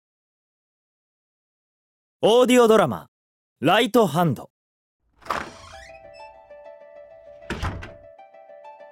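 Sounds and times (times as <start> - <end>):
speech: 2.2 - 4.5
door creaking open: 5.1 - 6.5, 7.4 - 8.1
door shutting with a soft thunk: 5.2 - 6.2, 7.4 - 8.1.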